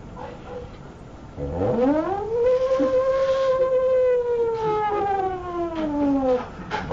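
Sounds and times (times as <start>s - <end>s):
air raid siren wailing: 1.4s - 6.5s.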